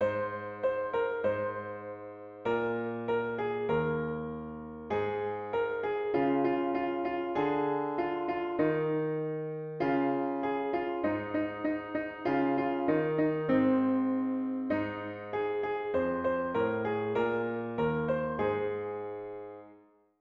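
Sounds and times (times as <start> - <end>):
piano piece: 0.0 - 20.0.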